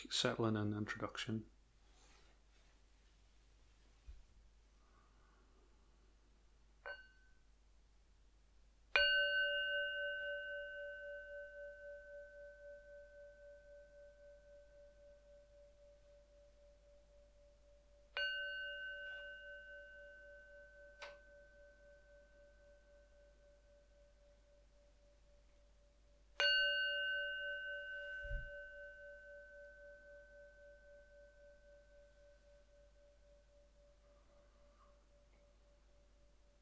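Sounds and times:
speech: 0:00.0 - 0:01.6
meditation bell struck: 0:06.8 - 0:07.6, 0:08.9 - 0:36.6.

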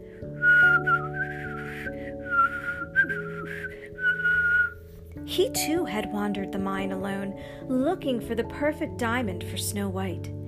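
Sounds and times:
soft sustained musical backing: 0:00.0 - 0:10.4
person whistling a light meandering little tune: 0:00.3 - 0:04.8
speech: 0:05.4 - 0:10.4.

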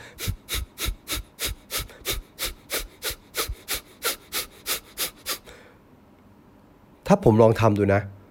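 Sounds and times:
short forceful nasal exhalations as a breathing exercise: 0:00.0 - 0:05.8
speech: 0:07.1 - 0:08.2.

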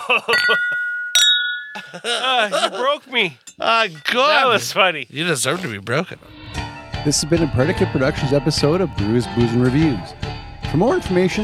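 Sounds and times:
laughter: 0:00.0 - 0:00.6, 0:01.8 - 0:03.4
speech: 0:00.1 - 0:00.8, 0:01.8 - 0:11.4
glasses clinking together in a toast: 0:00.1 - 0:02.3, 0:03.4 - 0:04.7.

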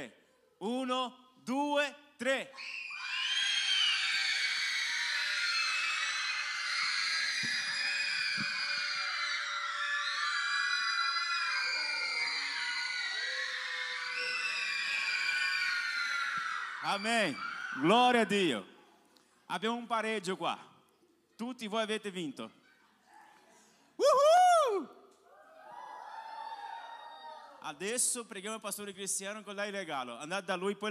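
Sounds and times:
speech: 0:00.0 - 0:02.9, 0:16.9 - 0:18.7, 0:19.5 - 0:20.7, 0:21.4 - 0:22.6, 0:27.6 - 0:30.8
large group of children and teenagers screaming in high-pitched chorus: 0:02.6 - 0:17.9, 0:24.0 - 0:27.6.

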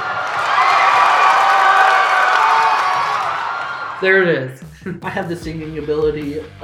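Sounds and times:
faint applause: 0:00.0 - 0:04.0
large crowd cheering and roaring: 0:00.0 - 0:04.2
speech: 0:04.0 - 0:06.6.

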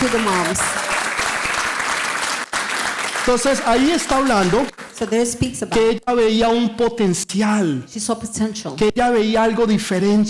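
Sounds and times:
speech: 0:00.0 - 0:00.8, 0:03.2 - 0:10.2
crowd applauding loudly: 0:00.0 - 0:05.2.

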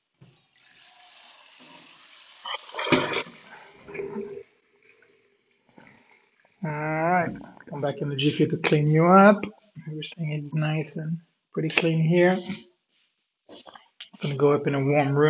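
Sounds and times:
water running from a tap: 0:00.3 - 0:03.6
water splashing: 0:00.4 - 0:04.3
speech: 0:07.8 - 0:12.7, 0:13.5 - 0:15.2.

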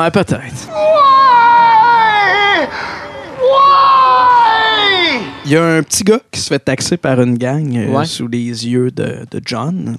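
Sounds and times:
speech: 0:00.0 - 0:01.8, 0:05.1 - 0:09.9
film character crying and screaming: 0:00.7 - 0:05.4.

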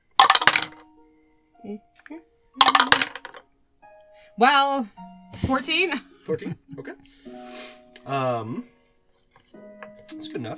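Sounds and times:
dice clattering across a hard surface: 0:00.1 - 0:00.8, 0:02.6 - 0:03.4
speech: 0:01.6 - 0:03.2, 0:04.4 - 0:08.7, 0:10.1 - 0:10.5.

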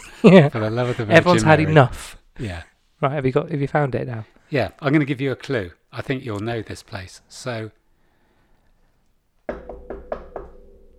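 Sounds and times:
speech: 0:00.2 - 0:07.8
firm knocking on a wooden door: 0:09.5 - 0:10.9.

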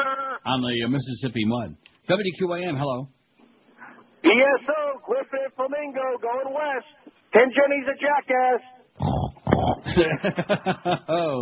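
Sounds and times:
speech: 0:00.4 - 0:03.2, 0:04.3 - 0:11.4
pig oinking: 0:09.0 - 0:09.9
laughter: 0:09.6 - 0:11.4.

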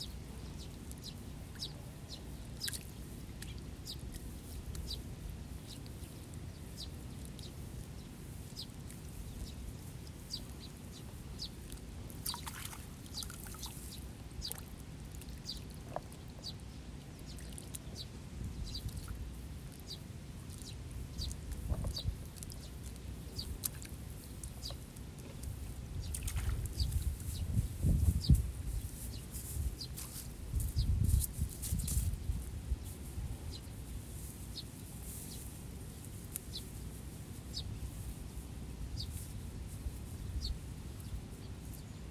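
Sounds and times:
sparrows chirping: 0:00.0 - 0:14.7, 0:15.3 - 0:39.4, 0:40.0 - 0:42.0
paddy water splashing and sloshing: 0:12.2 - 0:16.3, 0:26.1 - 0:27.0.

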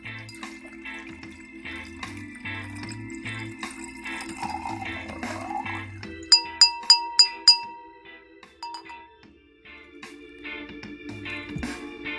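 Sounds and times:
wine glugging and trickling into a glass: 0:00.0 - 0:07.5
bright glassy clinks: 0:00.0 - 0:08.0, 0:08.6 - 0:09.2
steady music: 0:00.0 - 0:12.1.

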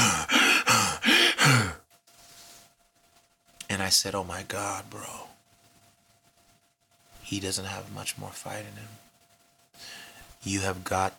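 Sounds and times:
voice imitating heavy rasping breathing of a tired fighter: 0:00.0 - 0:01.8
speech: 0:03.9 - 0:05.3, 0:07.3 - 0:09.1, 0:09.8 - 0:11.1.

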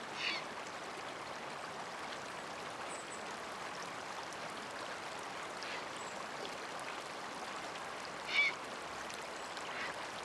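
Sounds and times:
river flowing in early summer: 0:00.0 - 0:10.2
short calls of ducks or geese: 0:08.3 - 0:08.6.

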